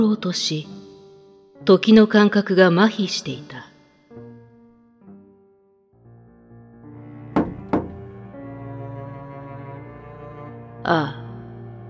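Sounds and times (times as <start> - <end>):
speech: 0.0 - 0.8, 1.6 - 3.6, 10.8 - 11.2
droning musical background: 6.0 - 11.8
knocking on a door: 7.3 - 8.2.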